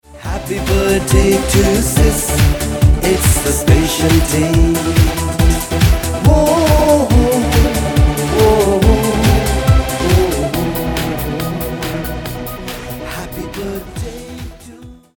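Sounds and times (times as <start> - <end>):
man singing birthday song in Hindi: 0.1 - 12.3, 13.0 - 15.1.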